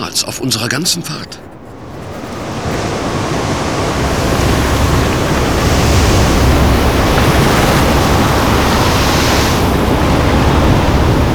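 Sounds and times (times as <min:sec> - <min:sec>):
speech: 0:00.0 - 0:01.5
heavy waves surging and crashing on a stormy ocean at night: 0:00.0 - 0:11.3
rushing wind over a stormy ocean at night: 0:00.0 - 0:11.3.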